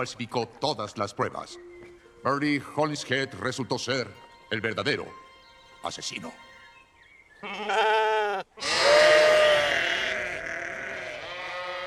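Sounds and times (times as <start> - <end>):
speech: 0.0 - 5.2, 5.8 - 6.4, 7.4 - 8.1
spring-born lambs bleating: 7.4 - 11.8.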